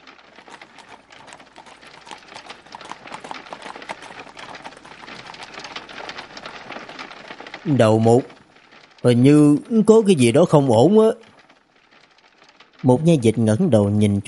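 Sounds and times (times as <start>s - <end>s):
hooves of horse-drawn carriages approaching: 0.0s - 13.4s
speech: 7.6s - 8.4s, 9.0s - 11.2s, 12.8s - 14.2s.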